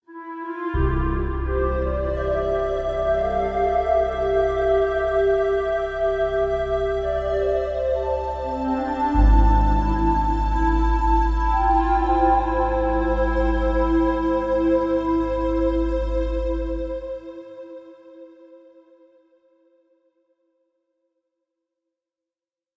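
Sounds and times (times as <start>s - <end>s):
intense boss intro music at 172 bpm: 0.8s - 17.0s.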